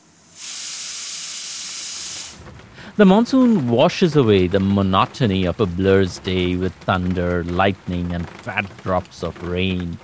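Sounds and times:
pressure cookers hissing while cooking rice and dal khichdi: 0.0 - 2.4
speech: 2.8 - 10.0.

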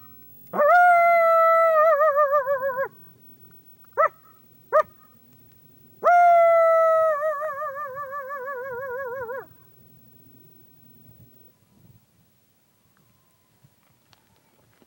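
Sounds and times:
coyote researcher imitating a coyote howl: 0.6 - 3.0, 6.0 - 9.6.

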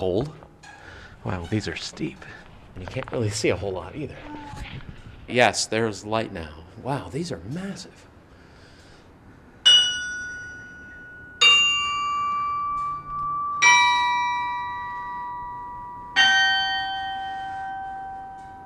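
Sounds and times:
speech: 0.0 - 0.4, 1.2 - 8.1
large carillon tower bells ringing: 9.6 - 18.6.

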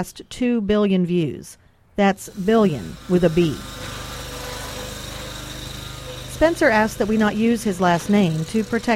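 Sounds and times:
speech: 0.0 - 3.9, 6.4 - 8.9
lawn mower engine running: 2.3 - 8.9.

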